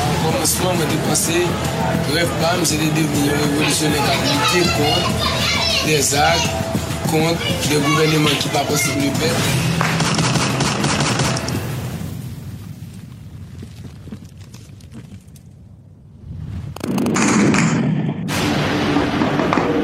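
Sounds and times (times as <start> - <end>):
speech: 0.4 - 9.8
automatic weapons gunfire crackling and echoing: 9.8 - 11.6, 16.9 - 19.8.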